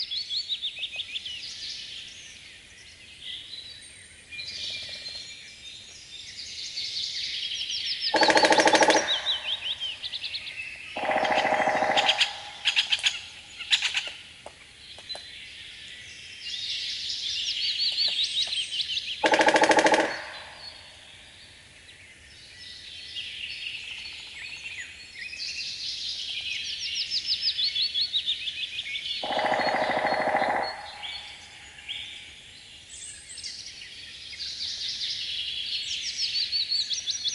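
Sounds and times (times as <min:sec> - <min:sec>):
birdsong chirping: 0:00.0 - 0:37.3
rapid woodpecker drumming: 0:08.1 - 0:10.3, 0:11.0 - 0:14.0, 0:19.2 - 0:21.0, 0:29.2 - 0:31.7.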